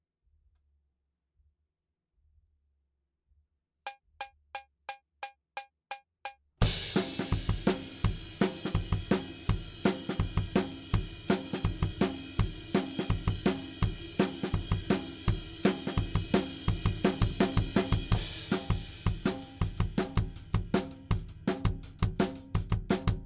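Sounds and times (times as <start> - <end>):
drums: 6.6 - 23.2.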